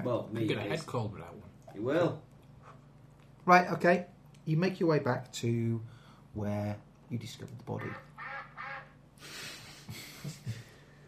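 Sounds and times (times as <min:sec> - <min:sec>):
speech: 0:00.0 - 0:02.3, 0:03.4 - 0:08.1, 0:09.2 - 0:10.6
slightly hissy background: 0:00.0 - 0:11.0
duck quacking: 0:07.8 - 0:09.0.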